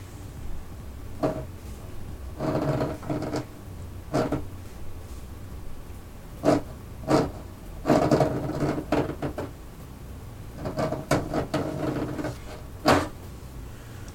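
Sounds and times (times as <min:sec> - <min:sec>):
human fingernails scratching and scraping into wood: 0:01.2 - 0:01.5, 0:02.4 - 0:03.5, 0:04.1 - 0:04.4, 0:06.4 - 0:09.5, 0:10.6 - 0:13.1.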